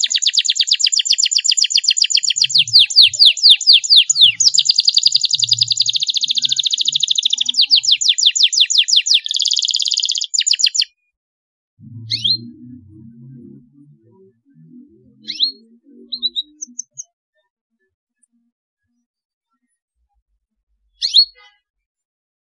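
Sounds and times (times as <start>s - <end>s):
Belgian canary trilling song: 0.0s - 11.0s, 11.8s - 17.1s, 21.0s - 21.6s.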